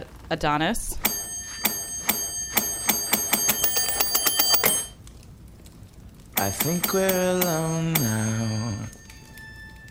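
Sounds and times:
speech: 0.3s - 1.1s, 6.4s - 9.0s
bright metallic bell ringing in a TV commercial: 1.0s - 5.0s, 6.4s - 9.8s.

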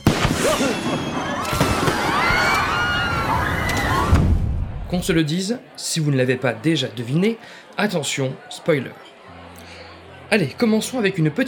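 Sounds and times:
fireworks bursting with crackling pops and whistling streaks: 0.0s - 2.6s
faint murmur of a crowd: 0.4s - 11.4s
speech: 4.9s - 9.1s, 10.3s - 11.4s.

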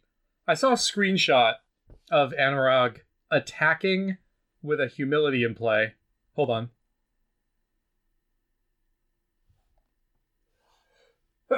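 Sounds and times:
speech: 0.5s - 6.8s
faint breathy stirrings: 10.5s - 11.3s.

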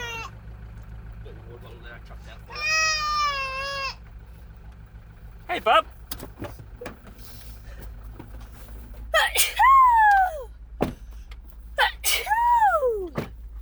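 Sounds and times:
speech: 2.0s - 2.6s, 5.5s - 6.0s
person sneezing: 9.2s - 10.5s, 11.8s - 13.3s.

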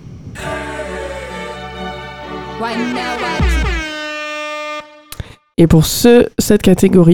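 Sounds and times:
podcast segment jingle with blaring air horn: 0.5s - 5.4s
speech: 2.6s - 3.7s, 5.6s - 7.1s.

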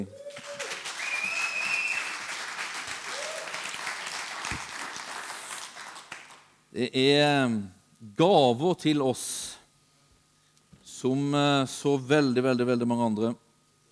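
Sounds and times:
faint whistles from an audience: 0.0s - 2.4s
audience applause for worship songs: 0.0s - 6.5s
speech: 6.8s - 9.5s, 11.0s - 13.4s.

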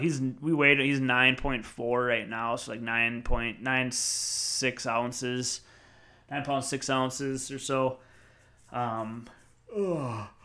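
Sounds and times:
speech: 0.0s - 5.7s, 6.3s - 8.1s, 8.7s - 10.4s
person yawning: 9.7s - 10.4s.

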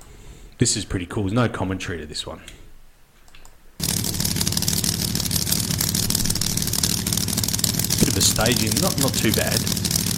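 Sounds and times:
speech: 0.6s - 2.6s, 8.2s - 10.0s
supercharged and nitrous-fed drag race car engines roaring: 3.8s - 10.1s.

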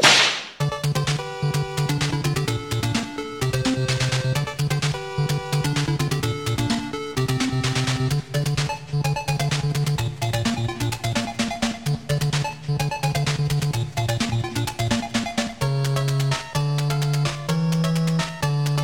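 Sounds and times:
sharp whip crack: 0.0s - 0.6s
bright driving electronic music with steady bass rhythm: 0.0s - 18.8s.

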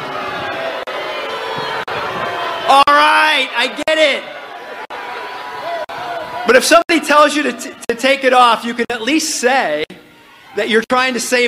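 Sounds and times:
large crowd booing loudly: 0.0s - 8.3s
speech: 3.4s - 4.4s, 6.5s - 9.9s, 10.6s - 11.4s.

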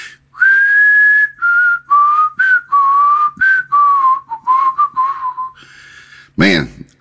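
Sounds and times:
man whistling a familiar song melody: 0.4s - 5.7s.

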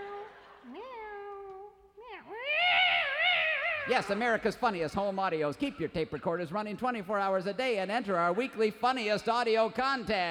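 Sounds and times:
cat yowling after touching a red-hot toaster: 2.4s - 4.1s
speech: 3.9s - 10.2s.

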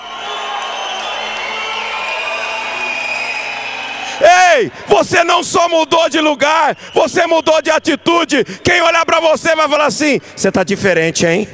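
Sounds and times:
sharp whistle: 0.0s - 4.2s, 6.1s - 9.2s
large crowd shouting and cheering at a worship service: 0.0s - 10.0s
speech: 4.6s - 11.5s.

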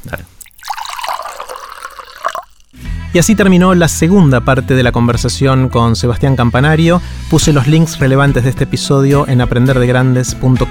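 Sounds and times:
drinking water pouring into a glass: 0.0s - 2.8s
speech: 0.1s - 0.4s, 3.1s - 10.6s.

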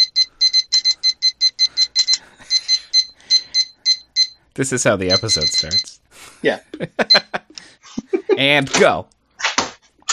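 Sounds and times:
kitchen timer beeping: 0.0s - 6.0s, 7.0s - 7.4s
speech: 4.6s - 7.3s, 8.4s - 9.2s.

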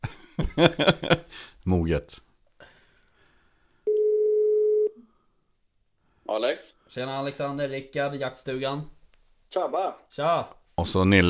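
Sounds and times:
laughter: 0.0s - 1.3s
speech: 0.6s - 2.2s, 6.3s - 11.2s
telephone ringback tone: 3.9s - 5.0s.

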